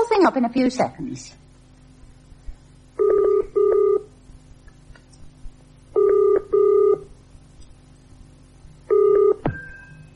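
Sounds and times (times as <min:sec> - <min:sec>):
speech: 0:00.2 - 0:01.4
telephone ringing in the earpiece: 0:03.0 - 0:04.1, 0:06.0 - 0:07.1, 0:08.9 - 0:10.1
phone line click as the line is picked up: 0:06.0 - 0:07.0, 0:08.9 - 0:09.8.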